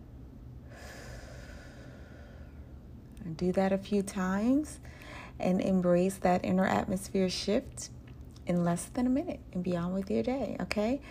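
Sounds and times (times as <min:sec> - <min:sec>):
low noisy rumble: 0:00.0 - 0:11.0
slow breath inhaling, holding and exhaling: 0:00.6 - 0:02.9, 0:04.8 - 0:05.4
speech: 0:03.2 - 0:11.0.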